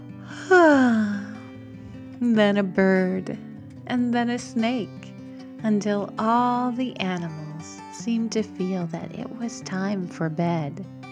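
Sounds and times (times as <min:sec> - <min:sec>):
human voice imitating a bunny yawning: 0:00.2 - 0:01.4
steady low tone: 0:00.2 - 0:10.8
speech: 0:02.2 - 0:11.0.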